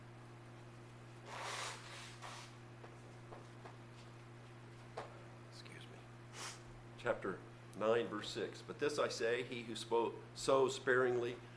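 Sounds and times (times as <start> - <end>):
steady low hum: 0.0 - 11.5
nose blowing: 1.2 - 2.6, 6.3 - 6.7
speech: 7.0 - 11.5.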